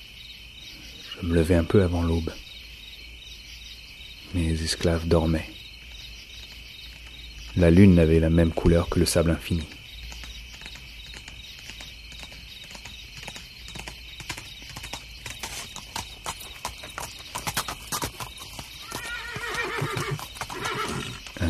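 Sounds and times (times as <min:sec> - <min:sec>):
speech: 0:01.2 - 0:02.4, 0:04.3 - 0:05.6, 0:07.6 - 0:09.8
horse hooves clip-clopping: 0:05.8 - 0:07.9, 0:09.5 - 0:21.4
loud drawn-out horse whinny: 0:18.8 - 0:21.3.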